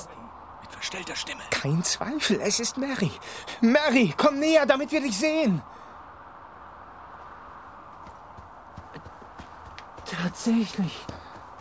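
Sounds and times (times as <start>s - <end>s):
steady low rumble and hiss: 0.0s - 11.6s
speech: 0.9s - 5.8s, 10.4s - 11.2s
small pony hooves clip-clopping in fog: 7.9s - 11.6s.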